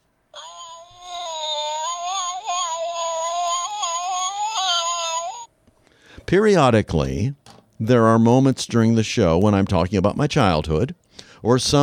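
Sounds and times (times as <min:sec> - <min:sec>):
drawn-out wavering cat yowl: 0:00.4 - 0:05.5
speech: 0:06.3 - 0:11.8.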